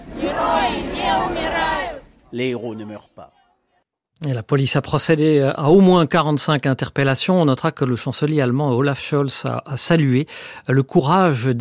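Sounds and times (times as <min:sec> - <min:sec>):
crowd shouting and chanting outdoors at a funeral procession: 0:00.0 - 0:03.8
speech: 0:02.3 - 0:03.4, 0:04.2 - 0:11.5.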